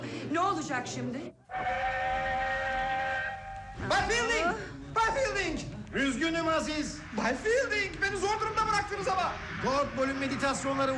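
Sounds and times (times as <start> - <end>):
speech: 0.3 - 2.3, 3.8 - 10.9
train whistle blowing: 1.5 - 3.8.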